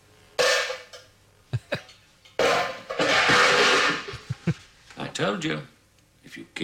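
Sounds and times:
metal pots banging and clattering: 0.4s - 1.1s, 1.8s - 4.3s
speech: 5.2s - 5.7s, 6.3s - 6.6s.

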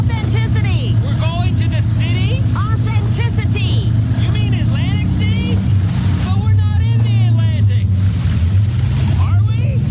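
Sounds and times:
voices talking: 0.0s - 8.0s, 9.0s - 9.8s
boat engine droning on open water: 0.0s - 9.8s.

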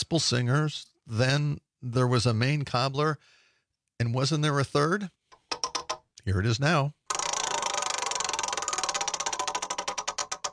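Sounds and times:
speech: 0.1s - 3.4s, 4.0s - 5.2s, 6.3s - 7.0s
game show spinning wheel ticking: 5.4s - 6.0s, 7.1s - 10.5s.

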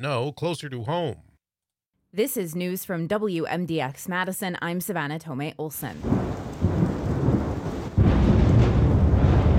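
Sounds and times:
speech: 0.0s - 1.3s, 2.1s - 6.4s
deep loud thunder rumbling in a storm: 6.0s - 9.5s
rain hissing: 6.0s - 9.5s.

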